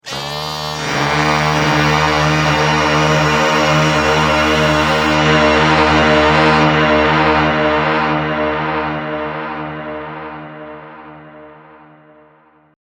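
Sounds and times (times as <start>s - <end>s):
kazoo chant through a pitch shifter: 0.0s - 10.6s.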